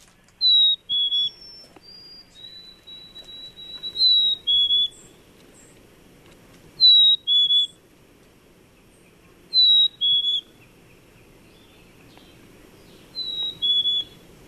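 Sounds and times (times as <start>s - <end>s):
low rumble: 0.0s - 14.4s
black-capped chickadee singing two-note whistles in Wisconsin: 0.4s - 5.3s, 6.8s - 7.8s, 9.0s - 14.4s.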